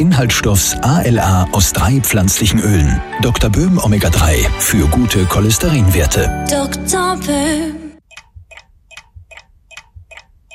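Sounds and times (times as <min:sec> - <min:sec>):
speech: 0:00.0 - 0:07.8
clock ticking: 0:08.1 - 0:10.5.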